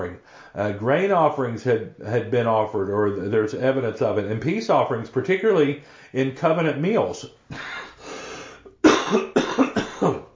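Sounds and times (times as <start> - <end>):
speech: 0.0 - 7.7
person coughing from a tickle in the throat: 8.8 - 10.3
throat clearing from a tickle in the throat: 8.8 - 10.3.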